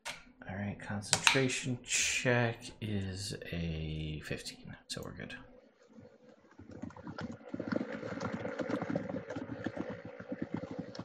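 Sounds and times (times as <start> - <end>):
speech: 0.9 - 5.5
rapid keyboard typing: 6.6 - 11.0.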